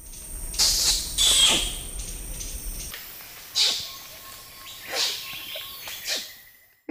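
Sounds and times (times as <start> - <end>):
orangutan hissy smacking kiss squeaks with falling sweeps: 0.6 - 1.8, 3.6 - 3.8, 4.9 - 5.2, 5.9 - 6.3.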